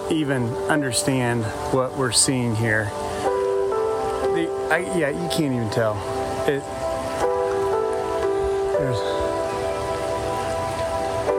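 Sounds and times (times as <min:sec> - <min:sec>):
waterfalls rushing down at a lake: 0:00.0 - 0:11.3
speech: 0:00.1 - 0:03.1, 0:04.4 - 0:06.8, 0:08.8 - 0:09.2.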